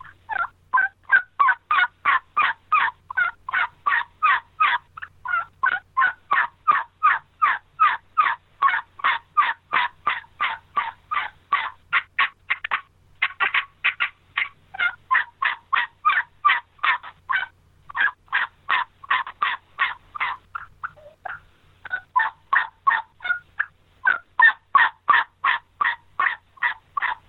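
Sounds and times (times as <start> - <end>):
turkey turnover yelps on a red latex combo cut turkey call: 0.0 - 27.2.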